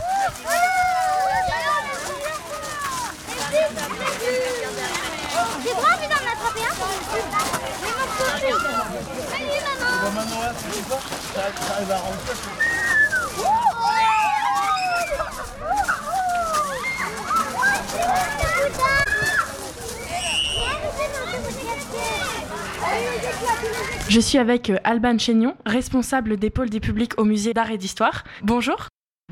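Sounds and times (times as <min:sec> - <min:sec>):
crowd of children shouting and playing outdoors: 0:00.0 - 0:24.2
speech: 0:10.6 - 0:13.7, 0:21.9 - 0:29.3.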